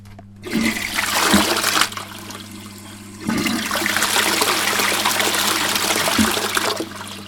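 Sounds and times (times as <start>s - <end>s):
toilet flushing: 0.4s - 7.2s.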